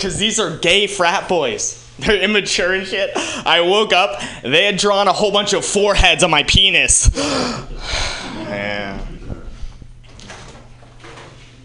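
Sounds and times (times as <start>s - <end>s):
speech: 0.0s - 9.0s
steady room hum: 0.0s - 11.6s
door swinging shut: 9.0s - 11.6s.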